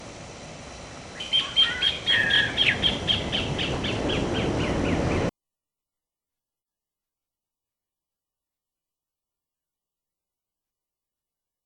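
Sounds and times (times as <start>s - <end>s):
pale-legged hornero calling: 1.1s - 5.3s.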